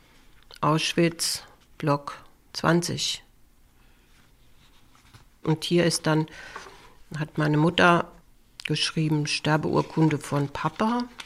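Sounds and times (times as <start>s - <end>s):
speech: 0.6s - 3.3s, 5.4s - 8.1s, 8.7s - 11.2s
woman leafing through paper family documents on a table: 4.0s - 5.3s, 9.4s - 11.2s.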